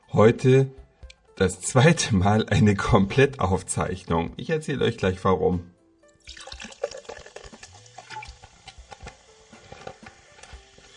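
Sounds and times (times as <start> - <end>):
speech: 0.2 - 0.8, 1.4 - 5.7, 6.3 - 6.6
soft drink pouring into a glass: 6.1 - 10.9
fizzy crackling of soft drink: 6.2 - 9.7.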